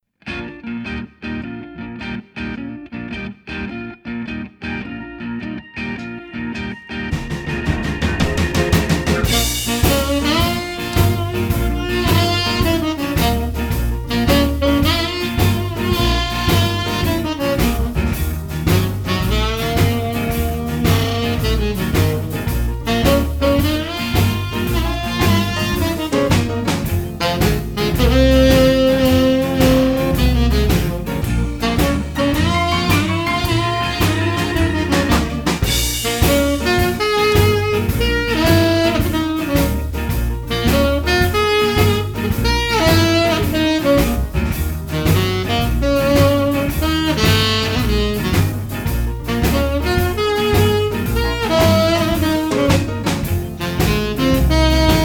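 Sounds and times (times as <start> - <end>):
basic blues exercises playing: 0.3 - 55.0.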